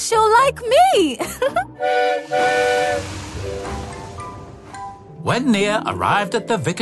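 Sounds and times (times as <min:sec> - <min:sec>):
speech: 0:00.1 - 0:03.7, 0:05.2 - 0:06.7
steam locomotive whistle: 0:01.8 - 0:04.0
steady rushing hiss of escaping steam: 0:01.9 - 0:05.0
low chuffing rumble of steam locomotive: 0:02.1 - 0:05.4.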